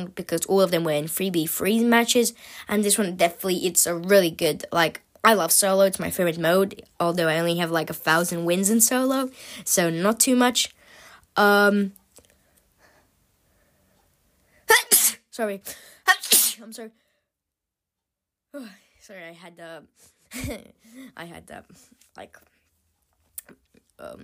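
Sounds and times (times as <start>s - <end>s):
speech: 0.0s - 10.8s, 11.4s - 12.0s, 14.7s - 17.0s, 18.5s - 22.5s, 23.5s - 24.2s
person sneezing: 14.7s - 15.3s, 16.0s - 16.7s.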